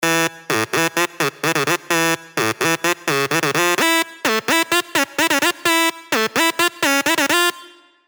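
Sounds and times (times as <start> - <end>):
dirty dutch synth leads: 0.0 - 7.6.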